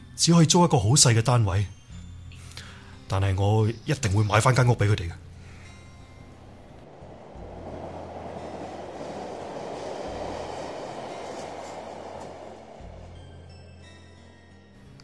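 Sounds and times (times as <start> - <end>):
speech: 0.2 - 1.8, 3.1 - 5.2
train passing by: 3.9 - 14.9.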